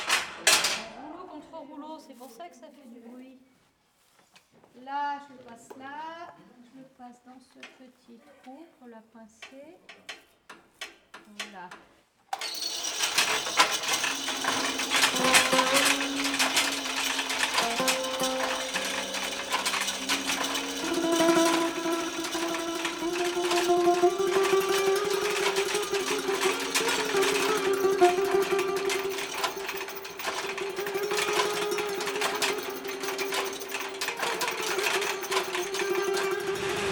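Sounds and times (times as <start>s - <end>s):
speech: 2.1s - 3.5s, 4.8s - 10.2s, 11.3s - 12.5s
sewing machine running without thread, rattling: 12.4s - 36.9s.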